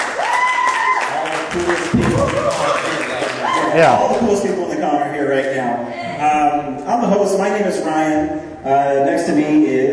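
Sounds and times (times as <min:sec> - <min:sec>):
convention audience applause: 0:00.0 - 0:04.0
speech: 0:01.5 - 0:09.9.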